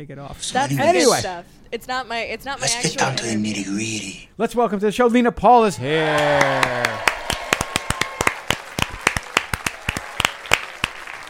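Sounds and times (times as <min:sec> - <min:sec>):
speech: 0:00.0 - 0:07.1
studio audience clapping in steady beats: 0:06.1 - 0:11.2.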